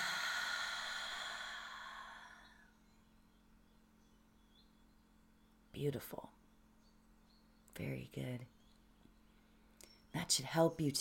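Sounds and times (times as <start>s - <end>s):
deep slow breath released during a guided relaxation: 0.0s - 2.7s
speech: 5.8s - 6.4s, 7.8s - 8.6s, 10.1s - 11.0s.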